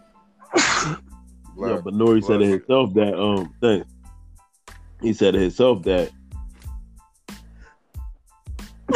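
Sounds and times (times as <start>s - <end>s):
loud sneeze: 0.5s - 1.0s
speech: 1.6s - 3.9s, 5.0s - 6.2s.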